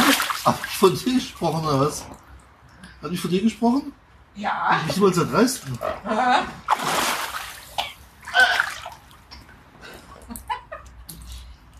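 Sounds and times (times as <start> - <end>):
water splashing onto a person: 0.0 - 2.2, 6.7 - 9.2
speech: 0.4 - 2.2, 3.0 - 7.0.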